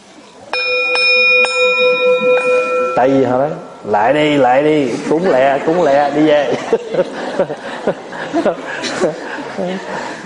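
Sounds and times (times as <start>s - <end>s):
temple bell struck with a mallet: 0.5s - 4.6s
speech: 3.0s - 10.2s
laughter: 4.8s - 10.2s.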